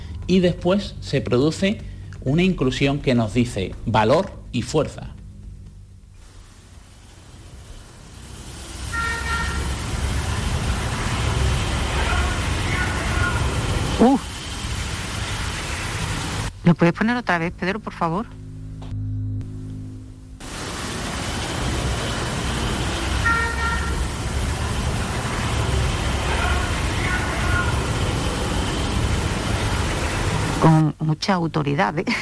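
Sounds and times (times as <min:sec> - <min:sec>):
speech: 0:00.3 - 0:05.2, 0:16.7 - 0:18.4, 0:31.1 - 0:32.1
steady rain-like hissing static: 0:06.1 - 0:18.1, 0:20.4 - 0:30.9
horn-like beep in a psychophony recording: 0:08.9 - 0:09.8, 0:23.2 - 0:24.1.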